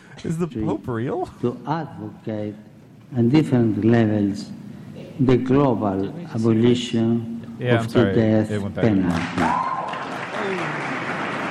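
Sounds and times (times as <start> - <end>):
speech: 0.2 - 4.6, 5.2 - 9.7
steady applause from an audience: 9.2 - 11.4.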